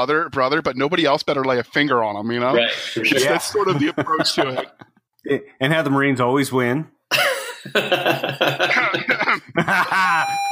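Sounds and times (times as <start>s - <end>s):
speech: 0.0s - 10.5s
laughter: 2.6s - 5.0s, 7.1s - 10.5s
person coughing: 7.1s - 9.6s.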